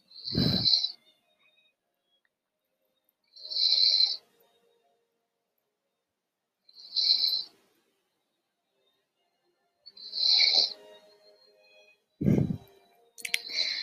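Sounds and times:
slow steady breathing of someone asleep: 0:00.0 - 0:01.0, 0:03.4 - 0:04.2, 0:06.8 - 0:07.6, 0:10.0 - 0:10.8, 0:12.2 - 0:12.7, 0:13.4 - 0:13.8
soft snoring rasps: 0:00.1 - 0:00.9, 0:03.4 - 0:04.2, 0:06.8 - 0:07.5, 0:10.0 - 0:10.7.

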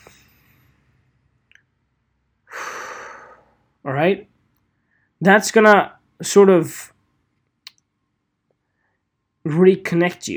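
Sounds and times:
person breathing deeply: 0:02.5 - 0:03.6
speech: 0:03.8 - 0:04.3, 0:05.2 - 0:06.9, 0:09.4 - 0:10.3.

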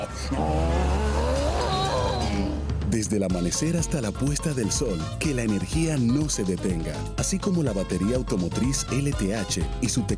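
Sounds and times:
speech: 0:00.0 - 0:00.7, 0:02.9 - 0:10.1
bus passing with deep engine rumble and whining gears: 0:00.0 - 0:02.9
loud street traffic: 0:00.0 - 0:03.1.

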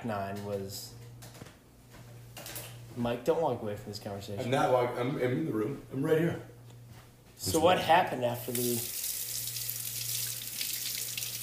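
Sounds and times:
speech: 0:00.0 - 0:01.0, 0:03.0 - 0:06.5, 0:07.4 - 0:09.0
faucet running into a sink while washing hands: 0:08.5 - 0:11.4.

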